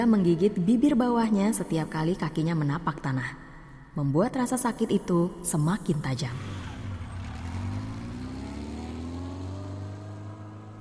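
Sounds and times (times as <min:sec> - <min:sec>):
speech: 0:00.0 - 0:03.4, 0:04.0 - 0:06.7
motorcycle engine starting and revving: 0:06.2 - 0:10.8.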